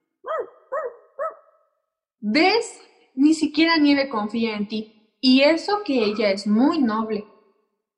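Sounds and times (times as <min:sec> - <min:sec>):
dog barking at a man: 0:00.2 - 0:01.7
speech: 0:02.2 - 0:07.3.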